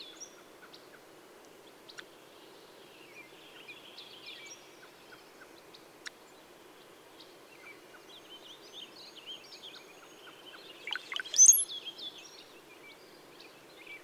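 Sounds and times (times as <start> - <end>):
faint bird twittering: 0.0 - 14.0
brown-headed cowbird song with bubbly gurgling notes and high whistle: 10.8 - 11.7.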